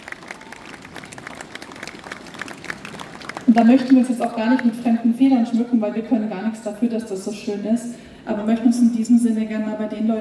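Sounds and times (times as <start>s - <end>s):
audience applause at an Advent calendar event in Uelzen: 0.0s - 5.0s
speech: 3.5s - 10.1s.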